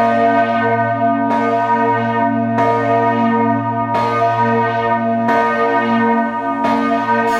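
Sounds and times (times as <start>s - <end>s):
bells of the Castle Church in Wittenberg Germany ringing: 0.0s - 7.3s.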